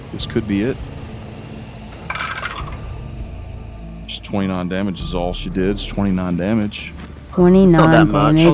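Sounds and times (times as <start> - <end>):
low room hum: 0.0 - 8.5
speech: 0.2 - 1.0, 4.3 - 8.5
hard plastic dice clattering down through a dice tower: 2.1 - 2.8.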